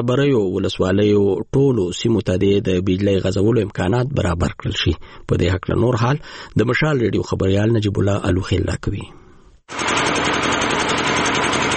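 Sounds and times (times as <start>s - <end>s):
speech: 0.0s - 10.0s
old electricity generator running in a market: 9.7s - 11.7s.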